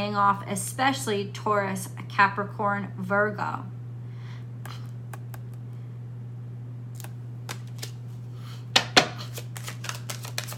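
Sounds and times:
speech: 0.0s - 3.8s
faint steady hum: 0.0s - 10.5s
tarot card slaps: 7.0s - 8.0s, 8.8s - 10.5s
tarot cards being shuffled: 7.0s - 10.5s.

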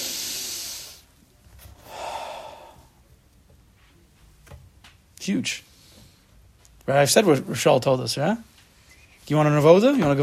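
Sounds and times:
deep deliberate breath in and out: 0.0s - 1.1s, 1.8s - 3.0s, 5.6s - 6.4s
speech: 5.2s - 5.7s, 6.9s - 8.5s, 9.3s - 10.2s.

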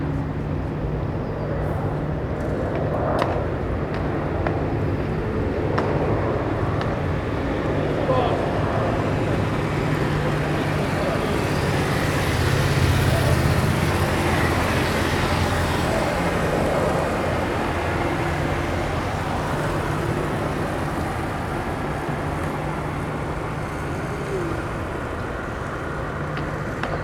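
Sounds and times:
passing vehicles by a barracks parade ground: 0.1s - 27.0s
faint voices: 6.1s - 21.6s, 23.1s - 27.0s.

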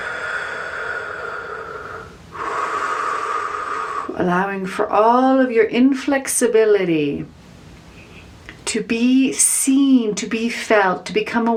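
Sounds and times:
deep breath drawn slowly: 0.0s - 4.2s
speech: 4.2s - 7.4s, 8.7s - 11.5s.

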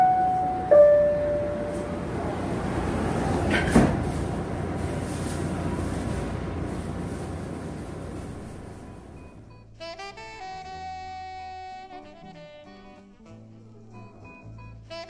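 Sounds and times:
two-tone electronic door chime on a commuter train: 0.0s - 2.1s
steady rumbling station noise: 0.0s - 9.5s
PATH commuter train doors sliding shut with a heavy thud: 0.7s - 6.6s.

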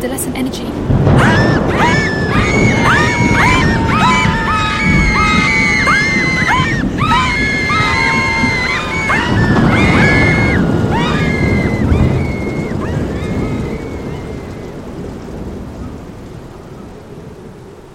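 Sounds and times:
speech: 0.0s - 2.7s
crashing: 1.0s - 14.4s
ward doors bursting open: 1.0s - 14.6s
crowd of girls screaming and yelling: 1.1s - 14.9s.

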